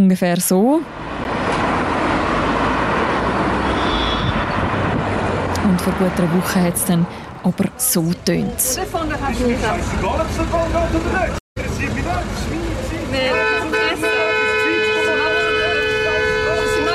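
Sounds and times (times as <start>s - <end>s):
speech: 0.0s - 1.1s, 5.8s - 11.4s, 13.1s - 14.1s
busy street traffic on the Lorraine bridge in Bern, Switzerland: 0.0s - 16.9s
car horns honking from angry drivers at a street blocked by protesters: 3.3s - 4.8s, 13.1s - 16.9s.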